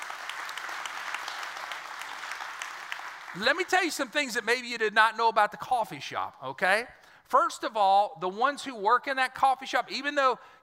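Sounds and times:
large group applauding: 0:00.0 - 0:04.1
speech: 0:03.3 - 0:10.6.

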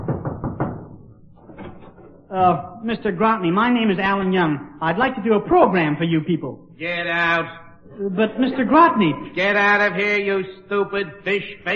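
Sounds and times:
knocking on an office door: 0:00.0 - 0:01.8
speech: 0:02.3 - 0:11.7.

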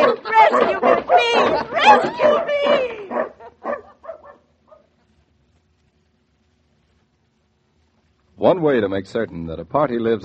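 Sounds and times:
faint whimpering dog yelp: 0:00.0 - 0:03.3
dogs barking: 0:00.0 - 0:05.0
speech: 0:01.9 - 0:02.8, 0:08.5 - 0:10.2.

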